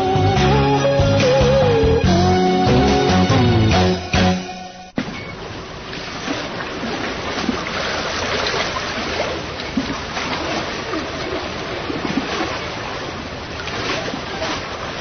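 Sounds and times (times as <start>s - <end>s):
music: 0.0s - 5.0s
rowed boat moving through river water: 4.9s - 15.0s.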